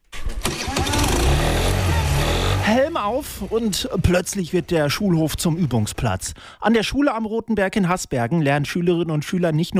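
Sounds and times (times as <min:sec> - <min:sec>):
moped engine starting: 0:00.1 - 0:06.1
speech: 0:02.7 - 0:09.7.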